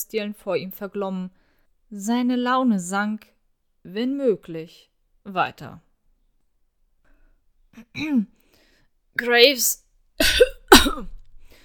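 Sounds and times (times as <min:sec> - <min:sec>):
speech: 0:00.0 - 0:05.9, 0:07.8 - 0:08.4, 0:09.2 - 0:11.2
harsh coughs: 0:10.2 - 0:11.2.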